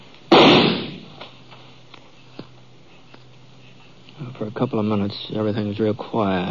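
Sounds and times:
gunshot: 0:00.3 - 0:01.2
speech: 0:04.4 - 0:06.4.

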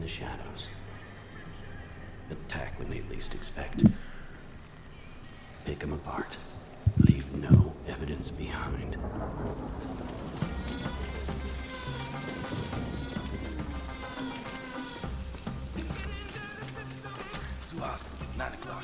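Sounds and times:
rain falling in a video game: 0:00.0 - 0:18.8
speech: 0:02.3 - 0:04.1, 0:05.7 - 0:10.4
low rumbling bed: 0:05.7 - 0:14.1.

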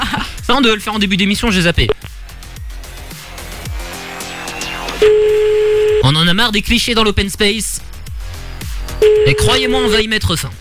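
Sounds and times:
speech: 0:00.6 - 0:02.1, 0:06.2 - 0:07.9, 0:09.2 - 0:10.5
ringback tone of an outgoing telephone call: 0:05.0 - 0:06.2, 0:09.0 - 0:10.0.

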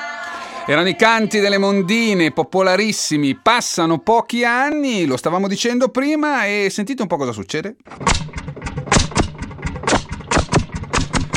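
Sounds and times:
speech: 0:00.7 - 0:08.3
Landini hot-bulb tractor engine running: 0:08.0 - 0:11.3.

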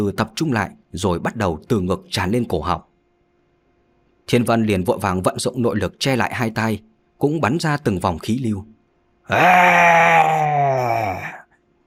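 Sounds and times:
speech: 0:00.0 - 0:02.9, 0:04.3 - 0:10.4
beast roaring: 0:09.3 - 0:11.4.

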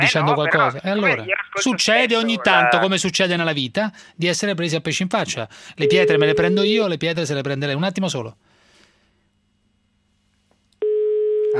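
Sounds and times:
speech: 0:00.0 - 0:08.5
faint steady hum: 0:00.0 - 0:11.5
telephone call tone while calling someone: 0:05.8 - 0:06.7, 0:10.8 - 0:11.5.

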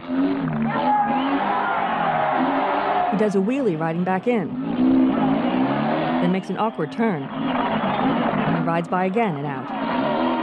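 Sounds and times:
large crowd applauding at a motorcycle stunt show: 0:00.0 - 0:03.5, 0:05.2 - 0:08.6
large crowd cheering at a motorcycle stunt show: 0:00.0 - 0:10.4
speech: 0:03.2 - 0:04.8, 0:06.2 - 0:10.3.

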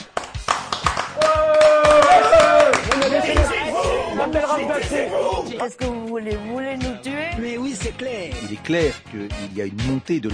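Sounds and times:
hands clapping in a rhythmic burst: 0:00.0 - 0:03.7
speech: 0:04.4 - 0:10.3.

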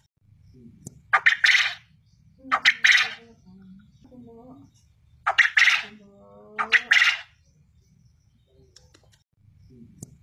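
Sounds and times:
quail calling as a lure: 0:01.1 - 0:03.4, 0:05.2 - 0:07.4.

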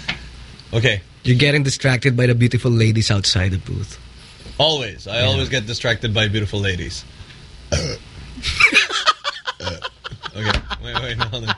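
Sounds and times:
speech: 0:00.7 - 0:07.2, 0:10.4 - 0:11.5
short low rough burp: 0:07.7 - 0:08.0, 0:09.6 - 0:09.9
vocal noises: 0:07.7 - 0:08.1, 0:09.5 - 0:10.2
laughter: 0:08.4 - 0:11.5.

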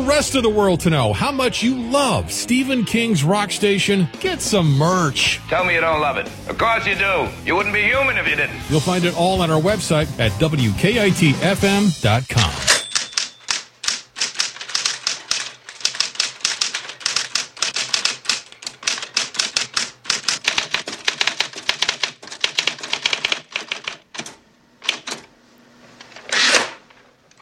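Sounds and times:
speech: 0:00.0 - 0:12.7
typewriter keys striking at a table: 0:12.4 - 0:25.2
rough mechanical typewriter sound: 0:26.0 - 0:27.4.

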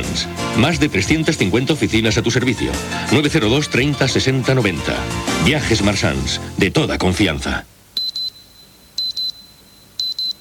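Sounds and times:
speech: 0:00.2 - 0:07.8
electronic alarm clock beeping: 0:08.0 - 0:10.3.

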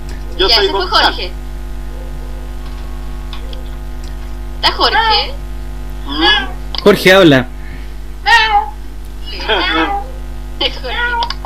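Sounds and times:
low electrical hum: 0:00.0 - 0:11.4
speech: 0:00.4 - 0:01.4, 0:04.6 - 0:05.4, 0:06.1 - 0:07.5, 0:09.4 - 0:10.0, 0:10.6 - 0:11.4
cat meowing: 0:06.1 - 0:06.6, 0:08.2 - 0:11.4.

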